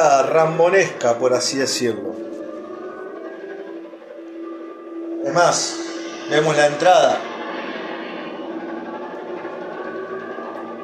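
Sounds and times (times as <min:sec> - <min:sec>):
speech: 0:00.0 - 0:02.4, 0:05.3 - 0:07.3
airplane engines roaring overhead: 0:00.0 - 0:10.8.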